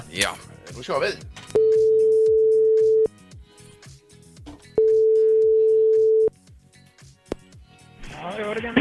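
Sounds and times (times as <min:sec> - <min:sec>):
speech: 0:00.1 - 0:01.4
telephone line ringing tone: 0:01.6 - 0:03.1, 0:04.8 - 0:06.3.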